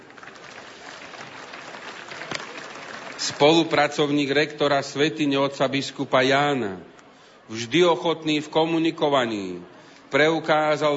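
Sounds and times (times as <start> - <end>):
audience applauding a priest: 0.0 - 3.9
speech: 3.2 - 6.9, 7.5 - 10.9.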